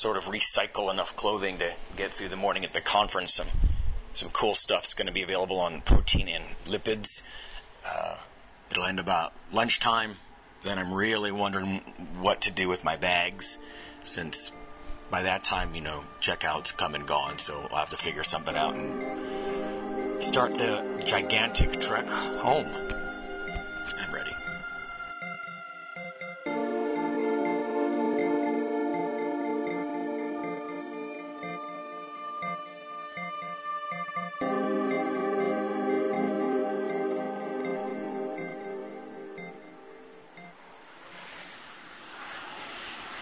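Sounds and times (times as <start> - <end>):
speech: 0.0 - 3.6, 4.2 - 19.3, 20.2 - 23.0
sustained tonal music-like sounds: 12.9 - 40.8.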